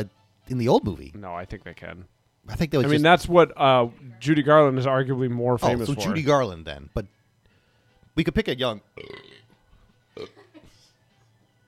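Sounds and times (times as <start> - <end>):
speech: 0.0 - 7.2, 8.2 - 9.4, 10.2 - 10.4
throaty burp with gurgling tail: 9.0 - 9.5, 10.2 - 10.4.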